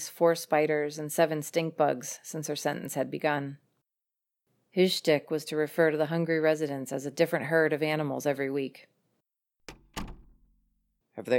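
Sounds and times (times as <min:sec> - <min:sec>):
speech: 0:00.0 - 0:03.6, 0:04.7 - 0:09.0, 0:11.2 - 0:11.3
dining room door swinging shut with solid thumps: 0:09.7 - 0:10.6.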